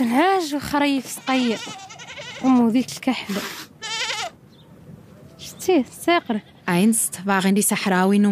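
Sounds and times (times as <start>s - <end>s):
speech: 0.0s - 3.6s, 5.6s - 8.2s
open-air background: 0.0s - 8.2s
goats and sheep bleating in scrap metal pens on a sand hill: 0.8s - 2.9s, 3.8s - 4.4s.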